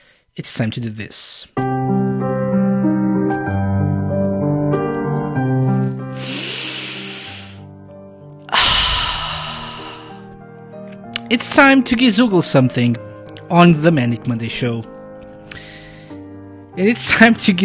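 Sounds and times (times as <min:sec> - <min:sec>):
deep breaths: 0:00.0 - 0:00.4, 0:06.1 - 0:07.7, 0:08.5 - 0:10.3, 0:15.5 - 0:16.3
speech: 0:00.4 - 0:01.6, 0:11.3 - 0:14.9, 0:16.8 - 0:17.6
music: 0:01.4 - 0:17.6.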